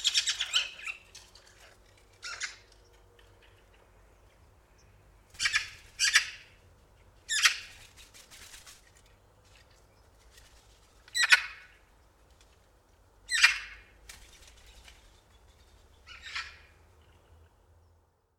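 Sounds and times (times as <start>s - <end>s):
Eurasian magpie Pica pica giving harsh rasping chatter calls: 0.0s - 1.1s, 5.4s - 6.6s, 11.1s - 11.8s, 13.3s - 13.9s, 16.1s - 16.8s.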